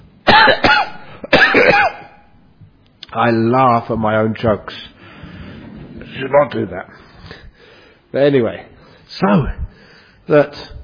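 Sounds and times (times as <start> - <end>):
harsh coughing: 0.2 - 2.3
speech: 3.1 - 4.9, 6.2 - 7.0, 8.1 - 9.7, 10.3 - 10.8.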